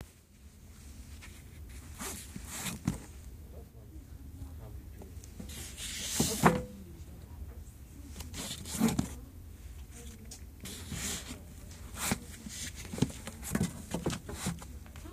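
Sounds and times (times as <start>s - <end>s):
shelving being handled: 0.8s - 3.3s, 5.4s - 6.8s, 8.1s - 9.2s, 10.6s - 14.8s.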